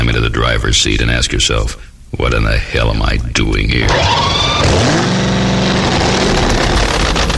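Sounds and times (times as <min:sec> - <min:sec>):
speech: 0:00.5 - 0:05.2
supercharged drag racing engine revving: 0:03.7 - 0:07.3.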